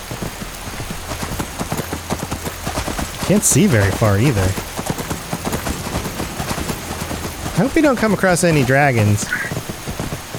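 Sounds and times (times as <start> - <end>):
video game rain at night pattering on a hard surface: 0.0 - 10.3
speech: 3.3 - 4.8, 7.6 - 9.5.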